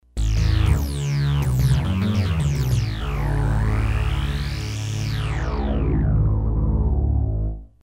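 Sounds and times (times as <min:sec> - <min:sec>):
dual synth bass: 0:00.0 - 0:07.8.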